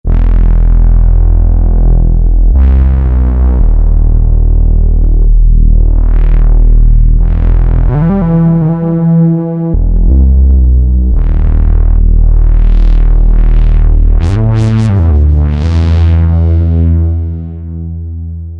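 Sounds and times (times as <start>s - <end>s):
Roland JP-8000 bass pedals with factory patches: 0.0s - 18.5s.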